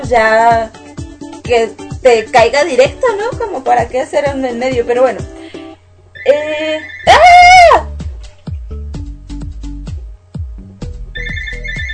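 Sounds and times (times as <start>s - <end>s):
speech: 0.1s - 0.8s, 1.5s - 5.4s, 6.2s - 7.2s
musical telephone ringtone: 6.2s - 7.2s, 11.2s - 11.9s.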